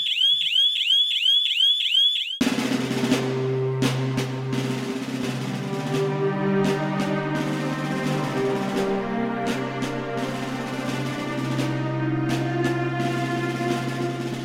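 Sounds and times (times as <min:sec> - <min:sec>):
electronic alarm warbling: 0:00.0 - 0:02.4
sustained music: 0:02.4 - 0:14.4.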